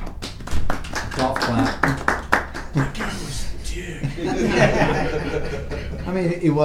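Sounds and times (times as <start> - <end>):
small group clapping: 0.0 - 6.0
speech: 1.2 - 1.8, 3.8 - 6.6
people chuckling: 1.4 - 6.4.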